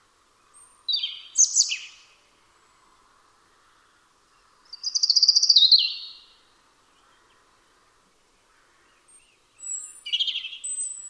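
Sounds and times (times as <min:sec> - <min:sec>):
European robin song: 0:00.4 - 0:02.9, 0:04.3 - 0:07.4, 0:08.9 - 0:11.0.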